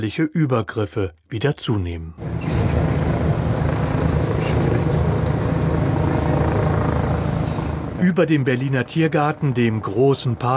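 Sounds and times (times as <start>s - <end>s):
speech: 0.0s - 2.5s, 8.0s - 10.5s
police helicopter rotors whirring over a large park in central Berlin: 2.2s - 10.5s.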